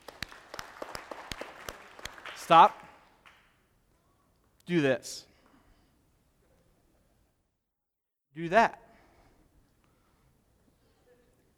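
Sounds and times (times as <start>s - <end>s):
audience clapping hands on command during a game: 0.0s - 3.6s
speech: 2.5s - 2.8s, 4.7s - 5.3s, 8.4s - 8.8s.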